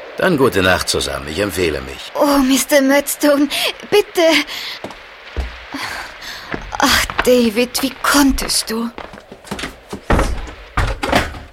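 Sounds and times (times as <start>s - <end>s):
speech: 0.2s - 5.0s, 6.8s - 9.1s
jolting thud and rattle: 9.5s - 11.5s
bolted door slammed shut hard: 10.1s - 11.5s.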